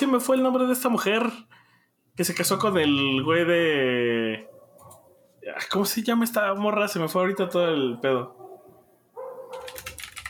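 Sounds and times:
speech: 0.1 - 1.6, 2.2 - 4.5, 5.4 - 8.4
rapid computer keyboard typing: 9.4 - 10.2.

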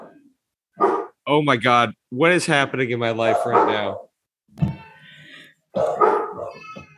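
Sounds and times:
dog barking with whining yelping tails: 0.8 - 1.2, 3.2 - 4.1, 5.7 - 6.9
speech: 0.8 - 4.7.

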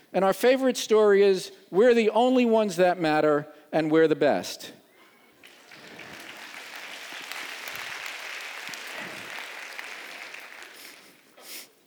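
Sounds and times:
speech: 0.1 - 4.8
crowd applauding: 5.4 - 11.4.

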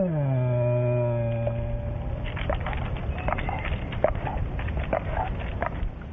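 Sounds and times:
black bear giving a deep drawn-out moan in fear: 0.0 - 2.8
scattered crackling and snapping noises: 1.3 - 6.1.

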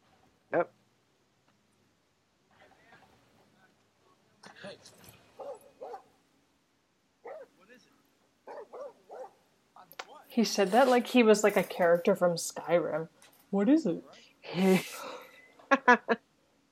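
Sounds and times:
speech: 0.5 - 0.8, 10.4 - 15.0, 15.9 - 16.2
dog barking: 5.4 - 6.1, 7.2 - 7.5, 8.5 - 9.4.

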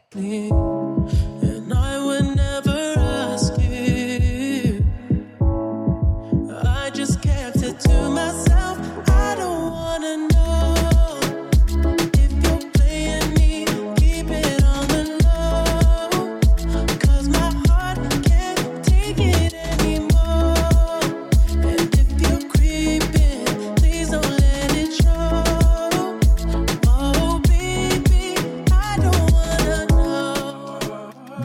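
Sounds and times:
hip-hop song remix with synth chords, bass kicks and percussion: 0.0 - 31.4.

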